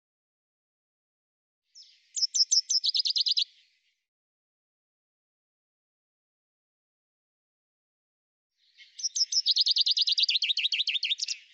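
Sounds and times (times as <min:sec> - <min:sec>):
common chaffinch song fragment: 0:01.8 - 0:03.8, 0:08.6 - 0:11.5.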